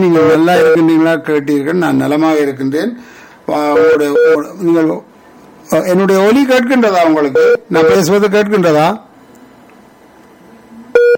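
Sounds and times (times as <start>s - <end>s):
speech: 0.0s - 5.1s, 5.7s - 9.1s
phone line incoming call tone beep: 0.2s - 1.0s, 3.7s - 4.5s, 7.3s - 8.1s, 11.0s - 11.1s.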